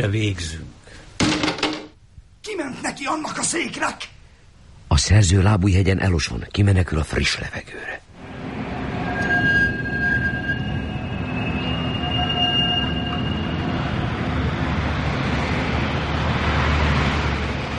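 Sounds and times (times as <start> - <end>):
speech: 0.0 - 0.7, 2.4 - 4.2, 5.0 - 8.1
trams ringing their bells at night: 8.2 - 14.6
trams rumbling along their tracks at night: 8.2 - 17.7.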